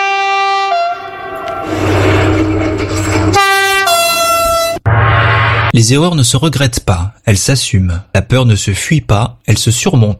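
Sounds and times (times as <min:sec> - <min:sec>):
TGV high-speed train horn: 0:00.0 - 0:01.9, 0:03.3 - 0:04.8
TGV high-speed train rushing rail roar: 0:00.0 - 0:05.7
speech: 0:05.8 - 0:10.1.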